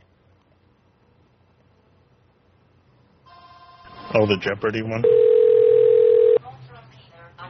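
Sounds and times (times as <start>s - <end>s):
speech: 4.1s - 5.3s
voices talking on speakerphone: 4.2s - 7.4s
cell phone incoming call tone: 5.0s - 6.4s.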